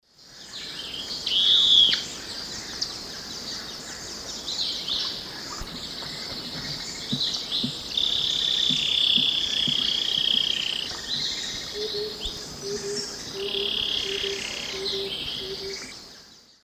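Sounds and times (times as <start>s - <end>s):
Philydor erythropterum call and song in South American eastern lowlands: 0.6s - 16.1s.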